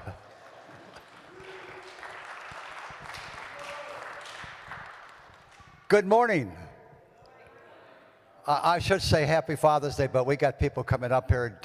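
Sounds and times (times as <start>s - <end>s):
congregation applauding in a large room: 0.0s - 5.9s
speech: 5.9s - 6.6s, 8.5s - 11.6s.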